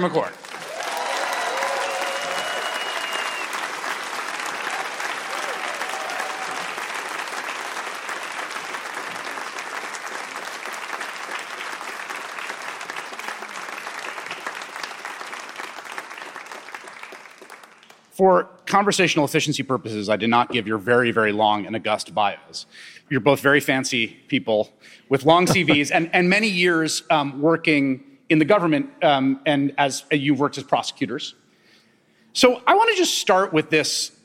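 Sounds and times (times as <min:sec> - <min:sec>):
speech: 0:00.0 - 0:00.4, 0:18.2 - 0:31.4, 0:32.4 - 0:34.2
large audience applauding: 0:00.0 - 0:18.1
faint voices and whoops: 0:00.6 - 0:03.6, 0:04.6 - 0:06.8.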